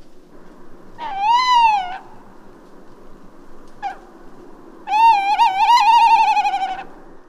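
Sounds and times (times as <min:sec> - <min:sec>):
steady low background noise: 0:00.0 - 0:07.2
tawny owl quavering hoot: 0:01.0 - 0:02.4, 0:03.7 - 0:04.2, 0:04.8 - 0:07.0.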